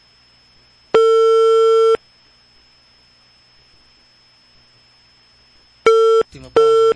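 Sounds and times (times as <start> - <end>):
steady electronic tone of an unanswered call to a village hall landline: 0.9 - 2.0, 5.8 - 6.9.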